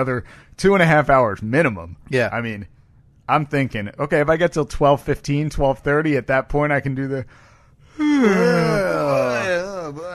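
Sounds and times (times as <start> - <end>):
speech: 0.0 - 10.1
exaggerated yawn: 7.9 - 10.1.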